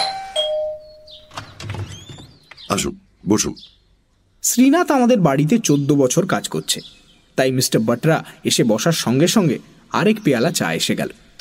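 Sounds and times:
faint two-note electronic doorbell chime: 0:00.0 - 0:01.3
speech: 0:02.7 - 0:03.8, 0:04.4 - 0:11.4.

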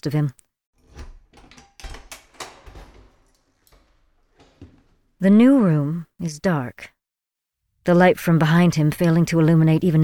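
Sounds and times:
speech: 0:00.0 - 0:00.4, 0:05.2 - 0:07.0, 0:07.9 - 0:10.0
house door latch and handle clicking and rattling as door opens: 0:00.8 - 0:05.2.

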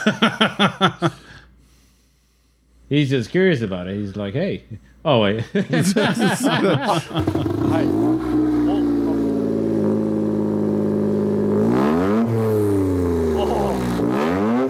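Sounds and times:
speech: 0:00.0 - 0:01.2, 0:02.9 - 0:08.6
laughter: 0:00.0 - 0:01.4, 0:05.4 - 0:08.9, 0:13.4 - 0:13.9
car engine humming and revving in a film scene: 0:07.2 - 0:14.6.

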